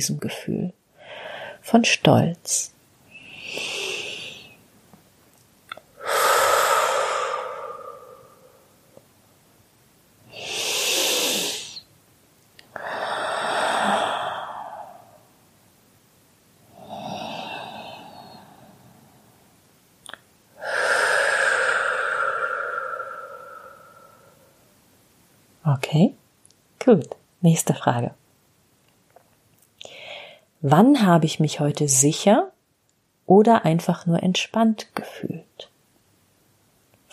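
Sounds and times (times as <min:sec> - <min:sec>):
speech: 0:00.0 - 0:00.8, 0:01.6 - 0:02.8, 0:27.4 - 0:28.2, 0:30.6 - 0:32.5, 0:33.3 - 0:35.4
slow deep breaths during a guided relaxation exercise: 0:01.0 - 0:01.6, 0:03.1 - 0:04.6, 0:06.0 - 0:09.0, 0:10.3 - 0:11.8, 0:12.6 - 0:15.3, 0:16.7 - 0:19.5, 0:20.6 - 0:24.6, 0:29.8 - 0:30.6.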